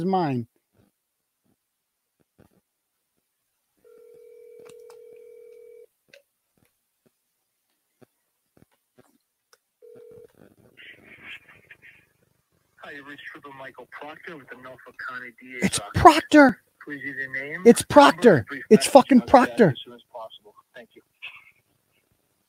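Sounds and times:
speech: 0:00.0 - 0:00.5, 0:12.8 - 0:21.4
telephone ringing tone: 0:03.8 - 0:05.9, 0:09.8 - 0:10.3
phone dialing clicks: 0:03.9 - 0:05.8
tinny voice answering over the phone line: 0:12.8 - 0:21.6.

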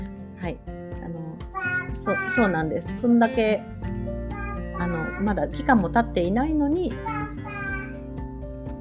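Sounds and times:
speech: 0:00.5 - 0:00.7, 0:02.1 - 0:03.7, 0:04.8 - 0:07.2
young child calling out in a high-pitched voice: 0:01.6 - 0:02.6, 0:04.3 - 0:05.3, 0:07.0 - 0:08.0.

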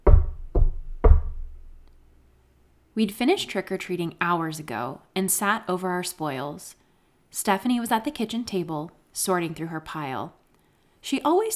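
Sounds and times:
heavy knocks on a wooden door: 0:00.0 - 0:01.6
speech: 0:03.0 - 0:10.4, 0:11.0 - 0:11.5.

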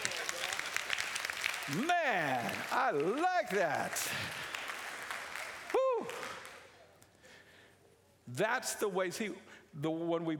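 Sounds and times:
large audience clapping hands: 0:00.0 - 0:07.1
speech: 0:01.7 - 0:04.4, 0:08.3 - 0:10.3.

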